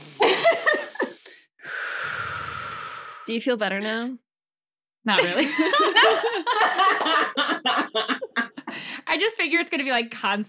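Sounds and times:
long steady deep breath drawn by someone calming down before board exams: 0:00.0 - 0:03.3, 0:08.7 - 0:09.0
short breathy bursts: 0:00.0 - 0:03.4
speech: 0:03.3 - 0:04.2, 0:05.0 - 0:08.2, 0:09.1 - 0:10.4
laughter: 0:05.2 - 0:08.7.

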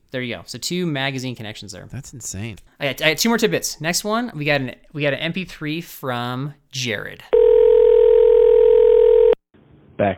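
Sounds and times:
speech: 0:00.1 - 0:07.4, 0:10.0 - 0:10.1
steady electronic telephone tone: 0:07.4 - 0:09.4.

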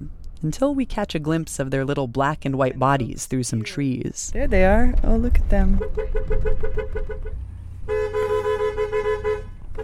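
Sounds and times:
low truck engine rumble: 0:00.0 - 0:09.8
speech: 0:00.4 - 0:08.1
truck car horn honking to herd goats: 0:05.8 - 0:09.8.

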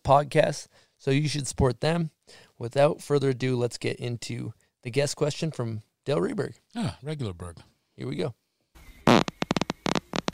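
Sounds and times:
speech: 0:00.1 - 0:08.4
fart sound effect from a soundboard: 0:09.0 - 0:10.3.

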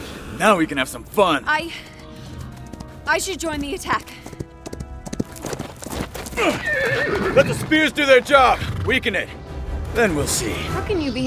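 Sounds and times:
speech: 0:00.4 - 0:02.0, 0:03.1 - 0:04.4, 0:06.4 - 0:09.4, 0:10.0 - 0:11.2
horse hooves clip-clopping: 0:01.6 - 0:08.6.

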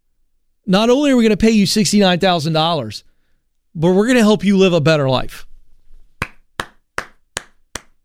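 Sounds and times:
speech: 0:00.7 - 0:03.1, 0:03.7 - 0:05.5
slow sharp hand clapping: 0:06.2 - 0:08.0.

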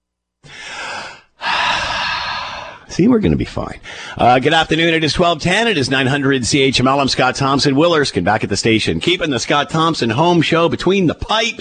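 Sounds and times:
deep breath from a breathing exercise: 0:00.4 - 0:02.9, 0:03.8 - 0:04.2
speech: 0:03.0 - 0:11.5.

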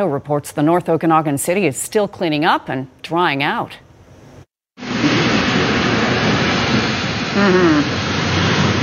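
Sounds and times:
speech: 0:00.0 - 0:03.8, 0:07.4 - 0:08.0
heavy rain pouring during an intense storm with hail: 0:04.8 - 0:08.8.

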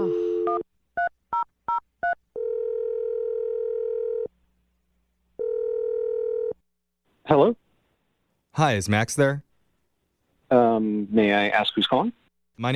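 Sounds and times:
long phone ringing tones: 0:00.0 - 0:04.3, 0:05.4 - 0:06.6
telephone dial tone: 0:02.4 - 0:04.3, 0:05.4 - 0:06.6
speech: 0:08.6 - 0:09.5, 0:10.5 - 0:12.7.

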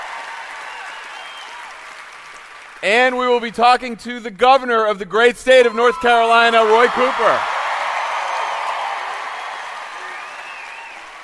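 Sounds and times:
live studio audience applauding: 0:00.0 - 0:03.4, 0:06.4 - 0:11.2
speech: 0:02.8 - 0:07.5.

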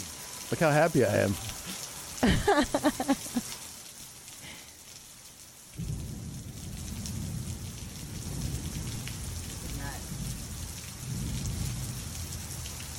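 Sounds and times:
heavy pouring rain: 0:00.0 - 0:12.9
speech: 0:00.5 - 0:01.6, 0:02.2 - 0:03.6
laughter: 0:02.2 - 0:03.4
deep rolling thunder: 0:05.8 - 0:12.4.

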